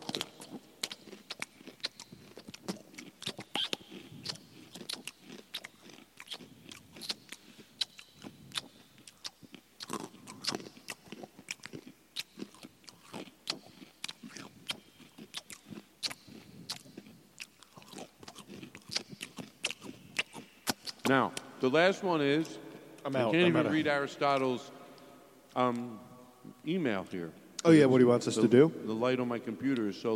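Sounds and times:
wet crunchy chewing: 0.0 - 21.2
lip smacking: 0.0 - 21.5
speech: 21.1 - 24.8, 25.6 - 26.0, 26.6 - 30.1.

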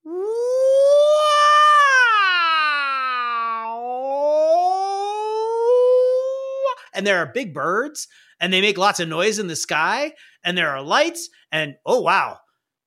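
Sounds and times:
voice imitating a wailing wolf howl: 0.0 - 6.8
speech: 7.0 - 12.4.

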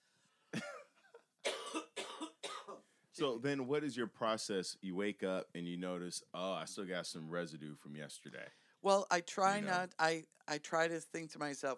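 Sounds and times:
person coughing harshly: 1.5 - 2.8
speech: 3.2 - 11.7.

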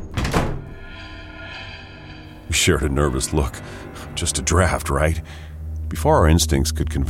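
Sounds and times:
heavy doors slamming shut together: 0.0 - 0.7
speech: 2.5 - 7.0.

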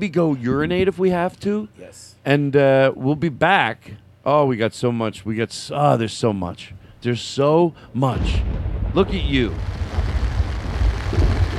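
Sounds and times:
speech: 0.0 - 9.8
heavy rain pouring outside: 9.0 - 11.5.

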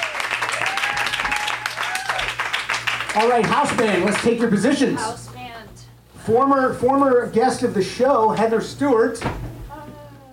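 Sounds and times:
whistles and cheers: 0.0 - 2.4
crowd applauding: 0.0 - 4.5
speech: 3.2 - 5.3, 6.3 - 9.5.

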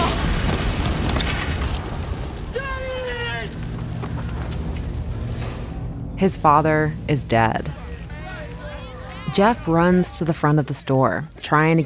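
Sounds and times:
explosion with roaring flames: 0.0 - 5.9
low hum: 3.5 - 10.7
speech: 6.2 - 7.8, 9.4 - 11.8.

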